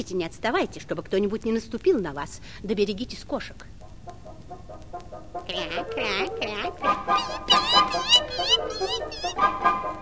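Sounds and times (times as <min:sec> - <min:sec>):
speech: 0:00.0 - 0:03.8
geese honking in a poultry yard: 0:05.4 - 0:09.9
ducks quacking in a poultry yard: 0:05.5 - 0:09.8.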